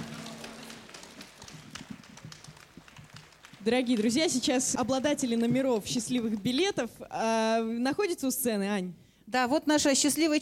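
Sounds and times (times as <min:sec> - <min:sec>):
crowd applauding: 0:00.0 - 0:05.5
speech: 0:03.6 - 0:10.4.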